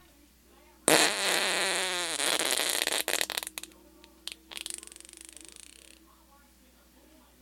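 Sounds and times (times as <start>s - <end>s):
farting noises: 0.9s - 6.0s.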